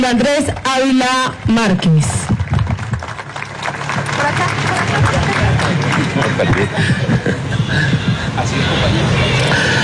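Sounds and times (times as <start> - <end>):
speech: 0.0 - 2.3, 4.2 - 9.8
large crowd applauding for the mayor: 2.3 - 8.3
laughter: 5.3 - 9.6.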